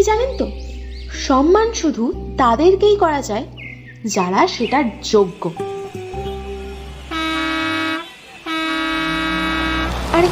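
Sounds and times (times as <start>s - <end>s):
speech: 0.0s - 0.6s, 1.2s - 5.8s
low bus engine rumble: 0.0s - 10.3s
bus horn honking as the bus arrives: 6.2s - 10.3s.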